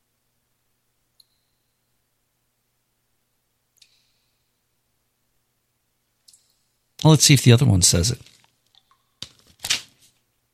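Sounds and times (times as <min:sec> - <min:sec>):
speech: 0:07.0 - 0:08.4
paper envelope being handled and opened: 0:09.2 - 0:10.2.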